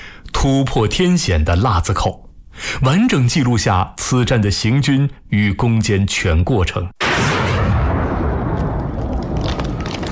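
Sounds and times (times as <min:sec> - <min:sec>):
speech: 0:00.4 - 0:07.3
dense continuous gunfire of a 1935 battle: 0:07.0 - 0:10.1
heavy rumble of booming blasts: 0:07.0 - 0:10.1.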